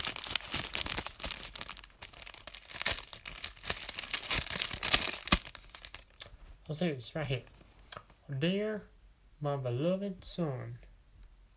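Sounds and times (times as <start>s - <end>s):
paper envelope being handled and torn open: 0.0s - 6.1s
speech: 6.7s - 7.6s, 8.3s - 10.8s.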